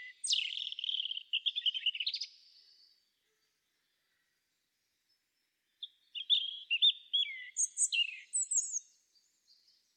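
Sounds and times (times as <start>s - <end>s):
European robin Erithacus rubecula singing: 0.0s - 2.4s, 5.8s - 9.9s.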